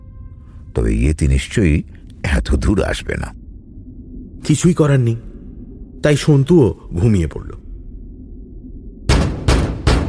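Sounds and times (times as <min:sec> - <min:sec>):
speech: 0:00.8 - 0:03.4, 0:04.4 - 0:05.3, 0:06.0 - 0:07.6
loud banging on an iron door: 0:09.1 - 0:10.0.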